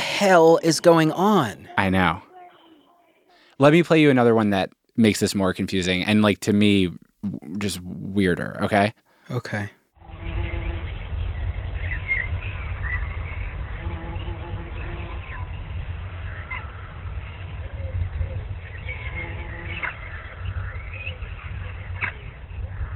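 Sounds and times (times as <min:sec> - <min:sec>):
speech: 0:00.2 - 0:02.3, 0:03.6 - 0:09.8
low rumble: 0:10.0 - 0:22.9
birds chirping: 0:10.3 - 0:22.9.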